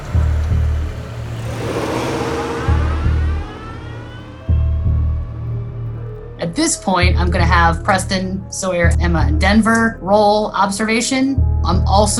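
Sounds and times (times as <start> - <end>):
car engine starting and revving while backing out of a garage: 0.0 - 12.1
pulsing low bass thump: 0.2 - 6.0
speech: 6.6 - 12.1.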